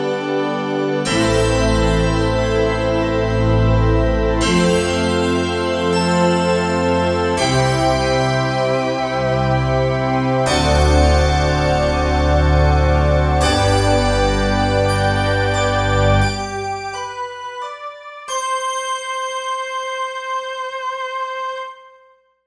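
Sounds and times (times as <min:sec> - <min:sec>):
magic synth: 0:00.2 - 0:21.7.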